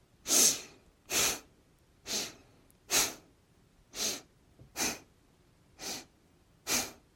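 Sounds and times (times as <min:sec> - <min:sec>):
person breathing in and out during a guided relaxation exercise: 0:00.2 - 0:03.3, 0:03.9 - 0:05.1, 0:05.8 - 0:07.1.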